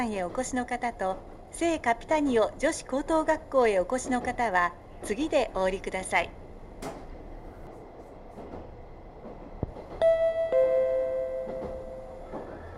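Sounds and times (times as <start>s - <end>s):
speech: 0.0s - 7.0s
train rumbling: 0.0s - 12.7s.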